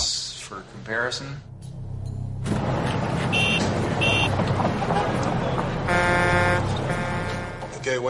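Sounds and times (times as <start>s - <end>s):
busy street traffic rumbling: 1.4s - 8.0s
car horns honking: 3.0s - 8.0s.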